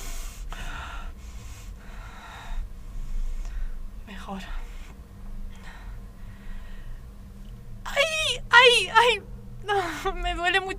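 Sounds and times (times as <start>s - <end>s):
heavy ragged breathing from a distressed person: 0.0s - 7.2s
speech: 4.3s - 4.6s, 8.7s - 10.7s.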